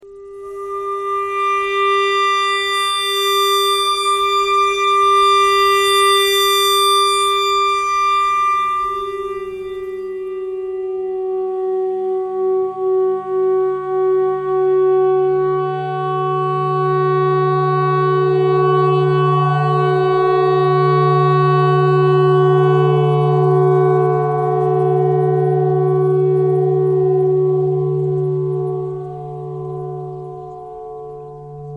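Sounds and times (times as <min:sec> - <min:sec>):
clarinet thread noise: 0:00.0 - 0:11.2
E clarinet notes: 0:00.0 - 0:30.8.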